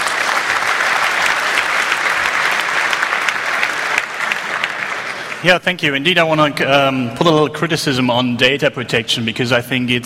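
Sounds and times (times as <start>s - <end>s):
audience applause: 0.0s - 5.7s
speech: 5.4s - 10.0s.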